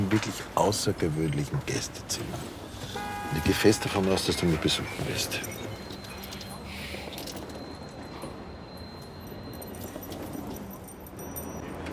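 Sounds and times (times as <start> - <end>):
voices murmuring: 0.0 - 8.9
speech: 0.2 - 5.6
house keys jangling as they are handed over: 5.1 - 11.9.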